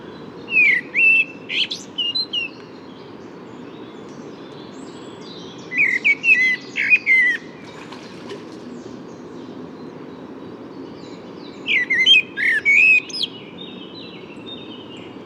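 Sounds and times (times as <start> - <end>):
common blackbird singing: 0.0 - 3.0, 3.6 - 7.8, 10.8 - 15.2.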